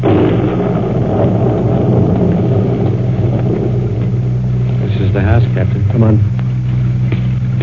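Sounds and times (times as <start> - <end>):
deep loud roll of thunder from a storm at night: 0.0 - 7.5
speech: 6.0 - 6.3.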